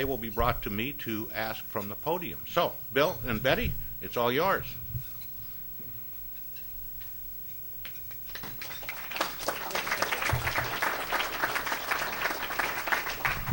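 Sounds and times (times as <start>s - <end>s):
speech: 0.0s - 4.8s
audience applause: 8.3s - 13.5s.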